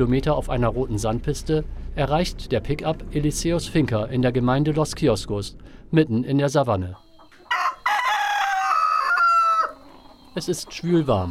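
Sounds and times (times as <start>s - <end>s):
speech: 0.0s - 7.0s, 10.4s - 11.2s
rooster crowing on a savanna farm in Colombia: 7.0s - 10.3s.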